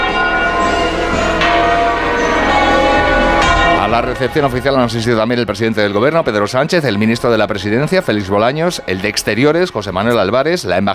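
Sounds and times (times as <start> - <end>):
church bells of churches in Madrid Spain ringing: 0.0 - 10.6
speech: 3.9 - 10.9.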